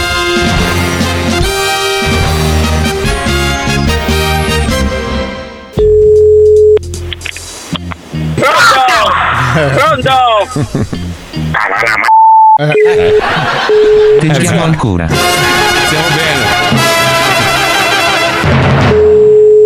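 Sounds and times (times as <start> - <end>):
loud music: 0.0 - 5.8, 15.1 - 19.0
outgoing phone call ringing tone: 5.8 - 6.8, 12.0 - 14.3, 19.0 - 19.6
laughter: 9.1 - 14.7
speech: 10.6 - 10.9, 12.6 - 16.4.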